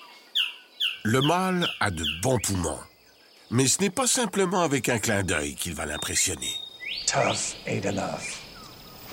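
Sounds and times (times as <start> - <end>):
male blue bird-of-paradise calling: 0.4 - 2.9, 3.5 - 7.6
speech: 1.1 - 2.9, 3.5 - 8.4.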